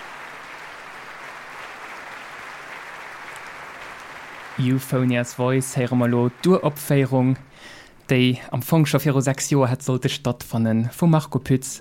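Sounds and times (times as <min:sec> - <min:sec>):
large concert audience applause welcoming soloists and conductor: 0:00.0 - 0:07.6
speech: 0:04.6 - 0:11.7.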